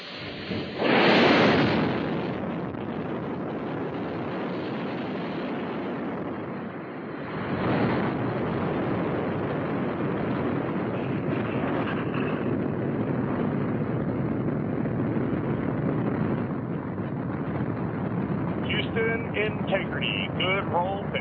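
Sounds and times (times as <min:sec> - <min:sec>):
rocket core stage engines igniting at liftoff: 0:00.0 - 0:21.2.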